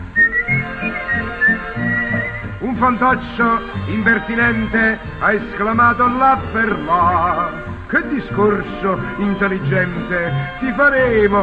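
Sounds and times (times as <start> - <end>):
pulsing low rhythmic backing: 0.0 - 11.4
person whistling a tune while walking: 0.2 - 2.9
speech: 2.8 - 11.4.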